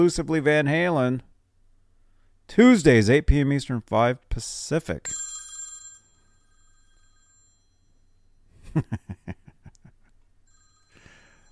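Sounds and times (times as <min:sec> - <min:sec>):
speech: 0:00.0 - 0:01.3, 0:02.5 - 0:05.2, 0:08.7 - 0:09.4
telephone bell ringing: 0:05.0 - 0:08.5, 0:10.5 - 0:11.5
faint steady tones: 0:05.0 - 0:08.6, 0:10.4 - 0:11.5.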